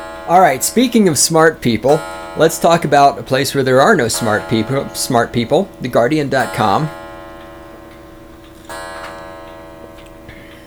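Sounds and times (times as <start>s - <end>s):
clock ticking: 0.0s - 10.6s
sustained humming tone: 0.0s - 10.6s
speech: 0.3s - 7.0s.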